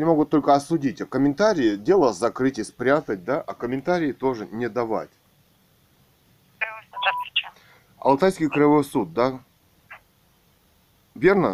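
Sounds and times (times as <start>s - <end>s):
speech: 0.0s - 5.2s, 8.0s - 9.5s, 11.2s - 11.5s
telephone keypad tones as a number is dialed: 6.6s - 7.4s.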